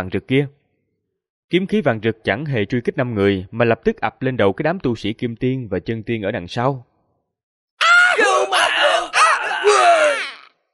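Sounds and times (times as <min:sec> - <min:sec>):
speech: 0:00.0 - 0:00.6, 0:01.5 - 0:06.9
crowd of warriors screaming in anguish: 0:07.8 - 0:10.5.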